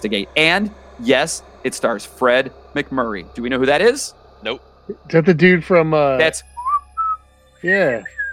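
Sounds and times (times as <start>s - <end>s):
speech: 0.0s - 6.5s, 7.6s - 8.2s
brief voiced hum: 0.0s - 8.3s
person whistling a short halting tune: 6.6s - 7.2s, 8.0s - 8.3s.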